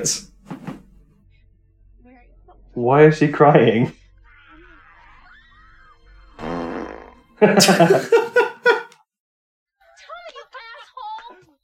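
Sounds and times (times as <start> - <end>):
speech: 0.0 - 0.3, 2.8 - 4.0, 7.4 - 8.2
fart noise in a film: 6.3 - 7.4
laughter: 7.4 - 9.0.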